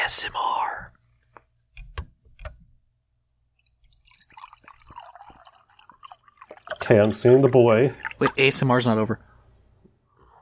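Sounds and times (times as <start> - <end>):
speech: 0.1 - 1.0, 6.9 - 9.3
clinks and drips: 3.6 - 8.5
water pouring into a cup: 3.6 - 8.9.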